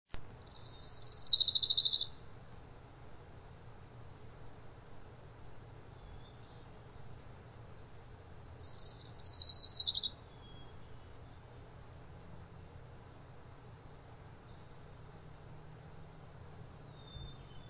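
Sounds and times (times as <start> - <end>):
Orange-crowned Warbler: 0.3 - 2.4, 5.4 - 7.2, 8.5 - 11.8, 16.8 - 17.6.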